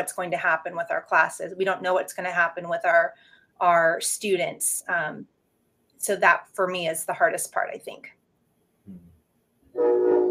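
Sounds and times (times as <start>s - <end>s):
speech: 0.0s - 5.4s, 6.0s - 8.2s, 9.8s - 10.1s
train horn blast: 9.8s - 10.2s.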